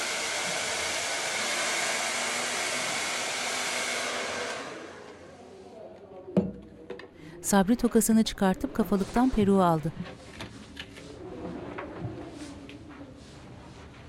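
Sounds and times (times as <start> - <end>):
hair dryer blow-drying a wig: 0.0 - 5.3
speech: 7.4 - 10.4.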